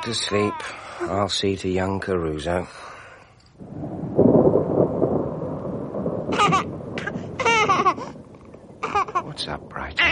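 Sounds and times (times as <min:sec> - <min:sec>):
speech: 0:00.0 - 0:02.9
thunder rumbling from a storm: 0:03.6 - 0:10.1.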